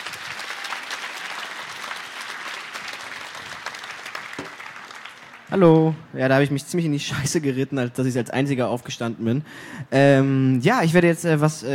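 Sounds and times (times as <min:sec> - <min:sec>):
sizable audience applauding to vote for a reader: 0:00.0 - 0:06.0
speech: 0:05.5 - 0:11.7.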